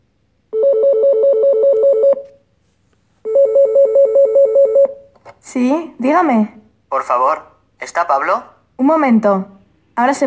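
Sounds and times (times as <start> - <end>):
telephone ringing: 0.5 - 2.4, 3.3 - 5.0
speech: 5.5 - 10.2.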